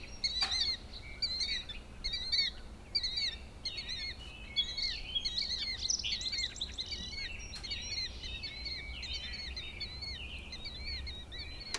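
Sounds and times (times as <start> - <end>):
Killdeer slurred wavering calls: 0.2 - 11.7.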